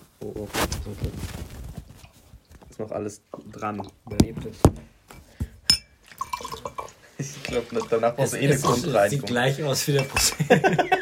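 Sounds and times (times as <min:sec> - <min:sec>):
speech: 0:00.2 - 0:01.6, 0:02.8 - 0:05.0, 0:07.2 - 0:10.9
drink poured from a bottle into a glass: 0:06.1 - 0:08.0
laughter: 0:10.1 - 0:10.9.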